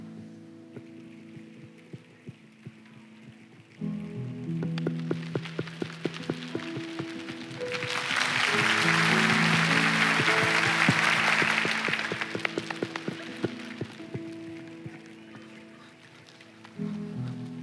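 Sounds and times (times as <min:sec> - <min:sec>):
audience imitating rainfall with hands: 0:00.8 - 0:17.5.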